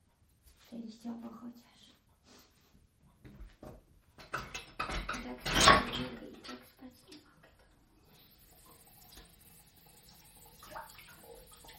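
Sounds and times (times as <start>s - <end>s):
speech: 0.7s - 2.0s
dishes clinking and clattering in a sink: 4.2s - 6.7s
running water splashing in a sink: 8.0s - 11.7s.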